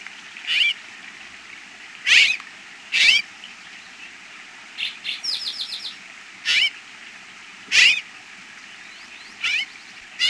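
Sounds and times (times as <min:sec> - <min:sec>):
North American bird giving harsh buzzy notes: 0:00.4 - 0:00.8, 0:02.0 - 0:04.2, 0:04.8 - 0:06.9, 0:07.7 - 0:08.1, 0:08.7 - 0:10.2.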